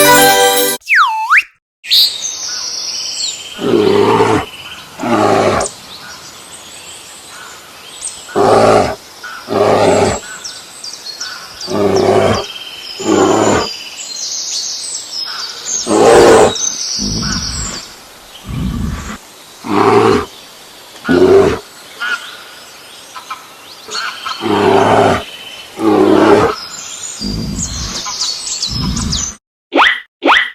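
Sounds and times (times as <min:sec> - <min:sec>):
brief rising tone: 0:00.0 - 0:02.1
bear roaring: 0:03.6 - 0:05.7, 0:08.4 - 0:10.2, 0:11.6 - 0:13.7, 0:15.8 - 0:20.3, 0:21.1 - 0:21.6, 0:24.4 - 0:26.6, 0:27.2 - 0:28.1, 0:28.7 - 0:29.4.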